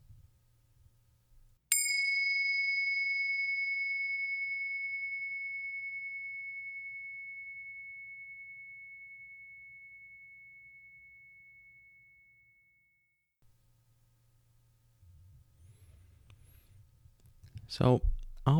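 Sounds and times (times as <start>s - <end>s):
meditation bell ringing: 1.7s - 13.0s
speech: 17.7s - 18.5s.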